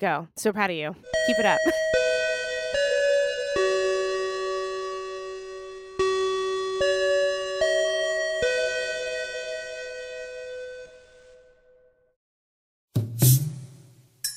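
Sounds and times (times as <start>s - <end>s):
speech: 0.0s - 2.1s
school bell chiming a slow melody: 1.1s - 10.9s
laughter: 1.3s - 1.8s.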